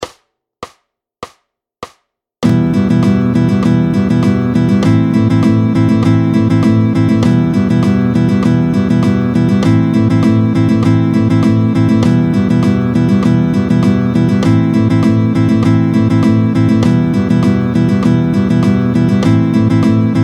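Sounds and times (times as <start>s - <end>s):
fast rhythmic beating in sixteenth notes: 0.0s - 20.2s.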